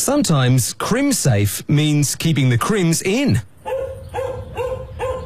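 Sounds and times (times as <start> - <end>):
speech: 0.1 - 3.5
dog barking: 3.6 - 5.2.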